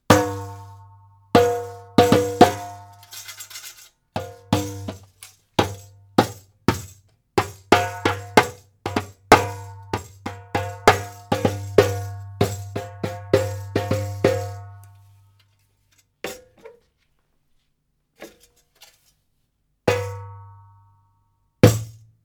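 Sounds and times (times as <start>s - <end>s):
darbouka drum: 0.0s - 3.5s, 4.2s - 15.0s, 19.9s - 20.8s, 21.6s - 22.0s.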